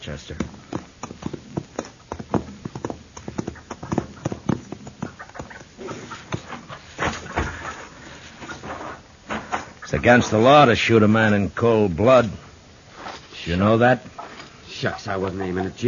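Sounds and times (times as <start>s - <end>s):
horse hooves clip-clopping: 0.0s - 8.6s
speech: 0.1s - 0.8s, 9.9s - 12.4s, 13.4s - 14.1s, 14.8s - 15.8s.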